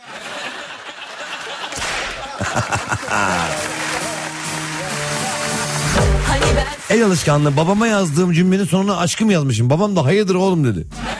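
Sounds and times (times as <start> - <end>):
laughter: 0.0 - 5.7, 10.9 - 11.1
whip cracks: 1.8 - 2.2
speech: 2.4 - 3.8, 6.6 - 11.0.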